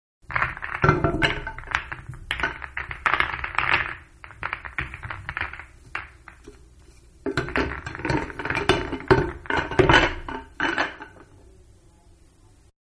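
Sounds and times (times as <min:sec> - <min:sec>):
pool billiard balls being racked up: 0:00.3 - 0:11.4.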